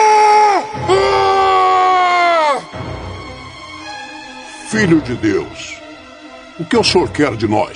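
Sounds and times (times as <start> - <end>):
men screaming, dramatized: 0.0 - 2.7
speech: 4.8 - 5.8, 6.6 - 7.7.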